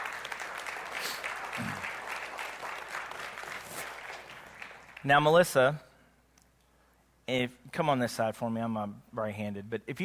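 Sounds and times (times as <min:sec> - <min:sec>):
audience applause as a woman comes on stage: 0:00.0 - 0:05.1
speech: 0:05.0 - 0:05.9, 0:07.3 - 0:10.0.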